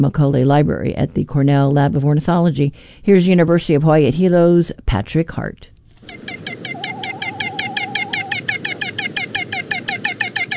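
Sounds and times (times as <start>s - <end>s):
speech: 0.0s - 6.4s
great frigatebird mating song: 6.0s - 10.5s.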